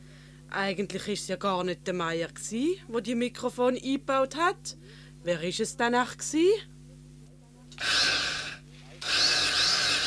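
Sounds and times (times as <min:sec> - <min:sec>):
speech: 0:00.5 - 0:06.7
electric drill boring: 0:07.8 - 0:10.0.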